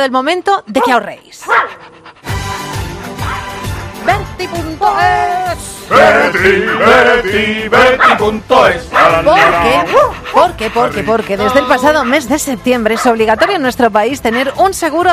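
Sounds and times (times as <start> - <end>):
speech: 0.0 - 2.0, 4.0 - 15.1
dog barking with sharp barks and high yips: 0.8 - 2.1, 8.0 - 8.2, 8.9 - 13.6.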